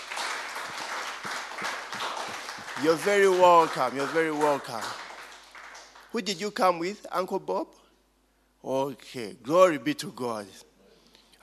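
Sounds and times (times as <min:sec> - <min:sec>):
audience applause at a church service: 0:00.0 - 0:06.1
speech: 0:02.8 - 0:05.0, 0:06.1 - 0:07.8, 0:08.6 - 0:10.7.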